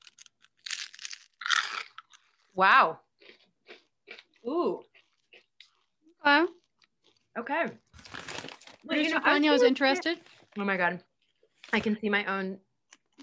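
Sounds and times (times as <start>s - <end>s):
crunching crisp cauliflower snack chips: 0.0s - 2.6s, 3.2s - 8.9s
speech: 2.6s - 3.1s, 4.4s - 4.9s, 6.2s - 6.6s, 7.4s - 7.8s, 8.8s - 11.1s, 11.7s - 12.6s.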